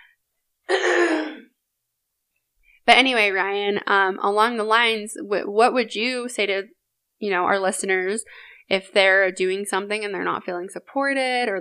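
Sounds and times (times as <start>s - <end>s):
person with a groggy throat clearing throat: 0.7s - 1.5s
speech: 2.9s - 11.5s.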